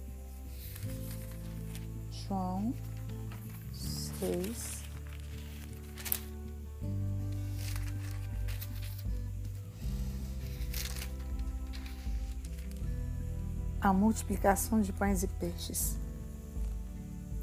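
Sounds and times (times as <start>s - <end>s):
low droning background: 0.0s - 17.4s
pages of a paper Bible being turned: 0.3s - 13.0s
speech: 2.3s - 2.9s, 4.2s - 4.8s, 13.8s - 16.0s.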